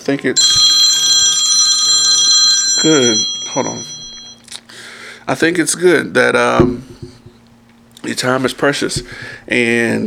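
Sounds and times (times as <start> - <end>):
speech: 0.1 - 0.6, 2.8 - 4.0, 5.3 - 7.1, 8.0 - 10.0
phone ringing with a bright metallic bell-like trill: 0.4 - 4.4.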